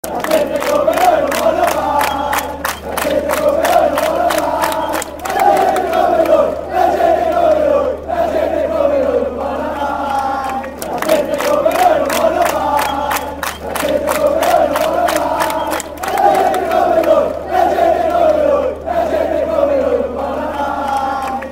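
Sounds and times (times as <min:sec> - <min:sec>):
fans chanting in the north stand: 0:00.0 - 0:21.5.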